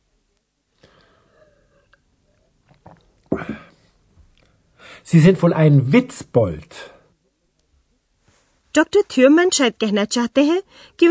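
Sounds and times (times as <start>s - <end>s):
swallowing gulp of beer: 2.7s - 3.7s
wet mouth noises from sipping beer: 2.7s - 3.7s
speech: 5.1s - 6.9s, 8.8s - 11.1s.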